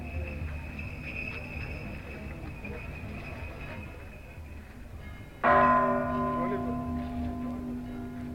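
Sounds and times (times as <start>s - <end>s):
low murmur of a dense festival crowd: 0.0s - 8.3s
basilica bell tower striking noon: 5.1s - 8.3s.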